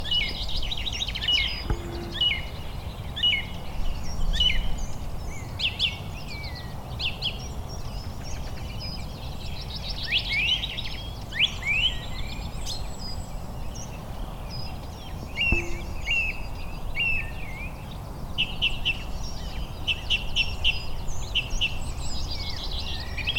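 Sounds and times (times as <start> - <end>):
Turdus philomelos song thrush singing: 0.0 - 23.3
Parus major great tit calling: 15.4 - 17.1.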